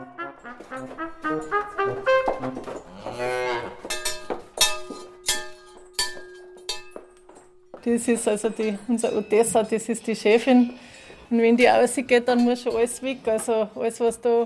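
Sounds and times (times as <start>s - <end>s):
cattle mooing as the herd leaves a stable on an alpine dairy farm: 0.0s - 3.9s
speech: 7.9s - 14.4s.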